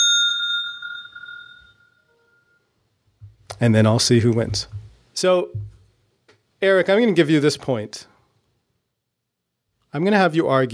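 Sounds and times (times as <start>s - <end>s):
single bell ding marking the end of debate argument time: 0.0s - 2.6s
speech: 3.6s - 5.6s, 6.6s - 8.1s, 9.9s - 10.7s.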